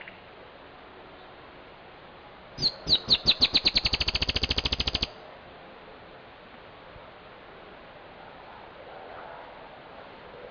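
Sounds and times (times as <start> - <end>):
dusky-tailed antbird Drymophila malura singing: 2.6 - 5.2.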